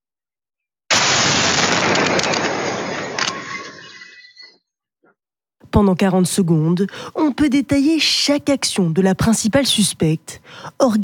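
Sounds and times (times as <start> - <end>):
loud parcel bomb explosion: 0.9 - 4.2
roaring crackling rush of noise and debris: 0.9 - 4.5
speech: 5.7 - 11.0.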